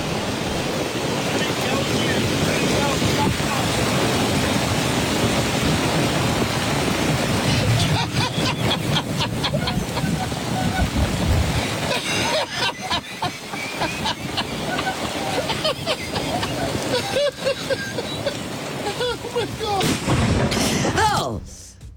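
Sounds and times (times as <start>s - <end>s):
pouring rain on a golf course: 0.0s - 20.5s
laughter: 7.6s - 19.9s.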